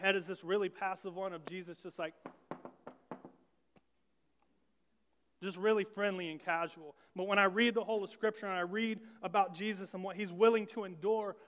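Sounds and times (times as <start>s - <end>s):
speech: 0.0s - 2.6s, 5.4s - 11.4s
gentle knocking on a door: 2.2s - 3.4s.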